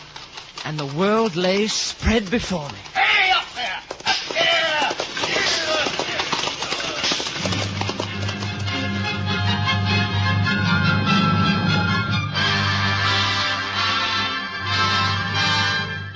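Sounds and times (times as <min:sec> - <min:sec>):
horse hooves clip-clopping along a road: 0:00.0 - 0:09.7
speech: 0:00.6 - 0:02.9
sustained low musical drone: 0:08.1 - 0:16.1.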